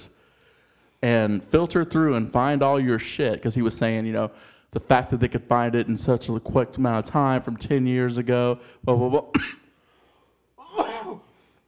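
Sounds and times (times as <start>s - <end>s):
speech: 1.0s - 9.6s
person coughing harshly: 9.3s - 9.7s, 10.6s - 11.4s.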